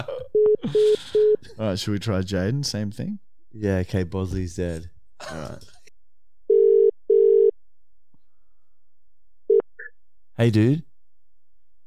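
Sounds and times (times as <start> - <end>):
speech: 0.7 - 5.7, 10.4 - 10.9
outgoing call ringback tone on a borrowed phone: 6.5 - 7.5.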